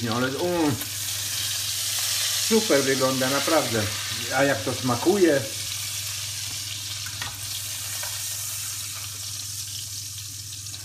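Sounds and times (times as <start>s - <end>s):
speech: 0.0s - 1.0s, 2.5s - 5.6s
bacon sizzling and crackling while frying in a pan: 0.0s - 10.8s.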